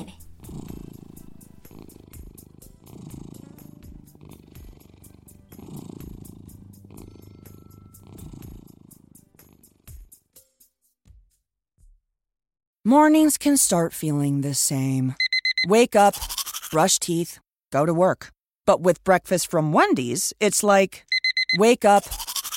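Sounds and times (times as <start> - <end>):
cat purring: 0.0 - 10.0
speech: 12.9 - 22.2.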